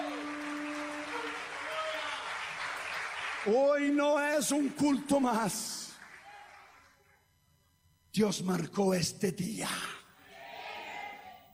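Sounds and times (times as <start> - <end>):
crowd clapping: 0.0 - 7.2
speech: 3.4 - 5.8, 8.2 - 10.0.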